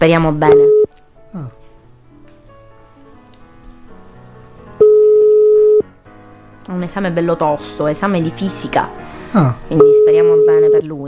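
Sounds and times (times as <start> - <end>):
speech: 0.0 - 1.6, 6.7 - 11.0
ringback tone from an outgoing phone call: 0.5 - 0.9, 4.8 - 5.9, 9.8 - 10.9.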